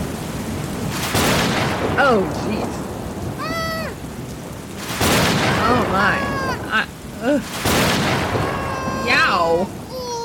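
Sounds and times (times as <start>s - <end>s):
heavy rain pouring: 0.0s - 10.2s
loud broadband thunder crashes: 0.8s - 4.0s, 4.8s - 6.8s, 7.4s - 9.4s
speech: 2.0s - 2.8s, 5.9s - 8.4s, 9.1s - 9.8s
startled voices crying out: 5.5s - 7.5s, 8.1s - 10.2s.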